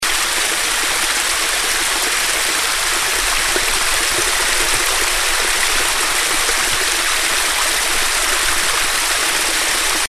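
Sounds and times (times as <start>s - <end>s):
brook waterfall: 0.0s - 10.0s.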